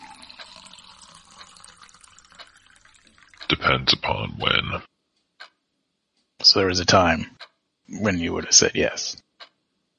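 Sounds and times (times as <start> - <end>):
liquid pouring into a cup: 0.0 - 3.4
speech: 3.6 - 4.9, 6.5 - 9.2.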